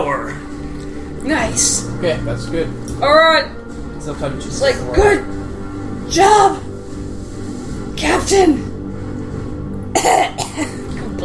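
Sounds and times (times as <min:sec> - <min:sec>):
speech: 0:01.2 - 0:05.4, 0:06.1 - 0:06.6, 0:08.0 - 0:08.6, 0:10.0 - 0:11.2
harsh raspy cough and throat-clearing hack: 0:09.9 - 0:10.9.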